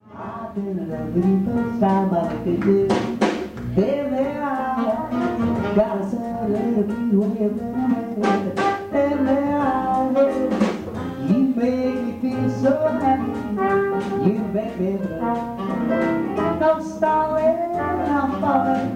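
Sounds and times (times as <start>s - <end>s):
jazz quintet vocals: 0.0s - 15.7s, 16.4s - 18.9s
jazz quintet bass: 0.0s - 18.9s
jazz quintet drums: 0.0s - 18.9s
jazz quintet piano: 0.0s - 18.9s
jazz quintet saxophone: 4.3s - 6.1s, 8.1s - 16.8s.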